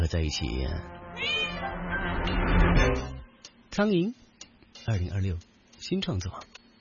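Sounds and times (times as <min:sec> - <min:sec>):
speech: 0:00.0 - 0:03.1, 0:03.8 - 0:04.2, 0:04.8 - 0:06.5
cat meowing: 0:01.2 - 0:01.7.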